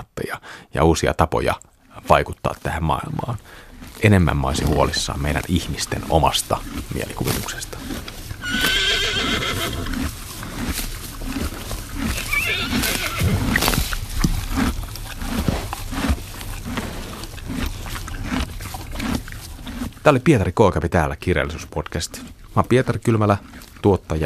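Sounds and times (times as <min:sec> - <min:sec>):
speech: 0:00.2 - 0:08.8, 0:20.0 - 0:24.2
horse snorting: 0:01.8 - 0:20.5, 0:21.2 - 0:24.2
horse hooves clip-clopping: 0:02.0 - 0:24.2
horse neighing: 0:08.4 - 0:10.2, 0:11.4 - 0:15.7.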